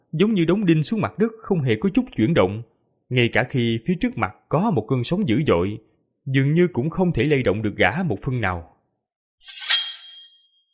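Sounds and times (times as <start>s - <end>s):
speech: 0.1s - 8.7s, 9.4s - 9.7s
dragon-slaying sword drawn from its sheath: 9.4s - 10.6s
thin high ringing tone of a sword: 9.4s - 10.7s.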